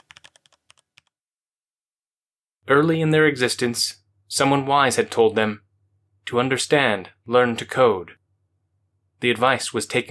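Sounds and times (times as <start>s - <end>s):
rapid computer keyboard typing: 0.0s - 1.1s
speech: 2.7s - 5.6s, 6.3s - 8.2s, 9.2s - 10.0s.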